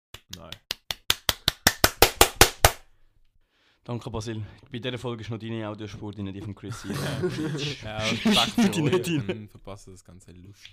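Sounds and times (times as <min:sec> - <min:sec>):
hand clapping: 0:00.1 - 0:02.9
speech: 0:00.4 - 0:00.6, 0:03.9 - 0:10.7
laughter: 0:06.7 - 0:09.4.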